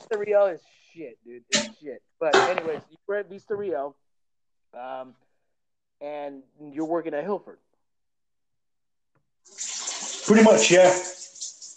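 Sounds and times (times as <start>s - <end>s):
speech: 0.1s - 4.0s, 4.7s - 5.2s, 6.0s - 7.6s, 9.5s - 9.7s, 10.3s - 11.2s
stream of liquid splashing, like someone urinating: 9.5s - 11.7s.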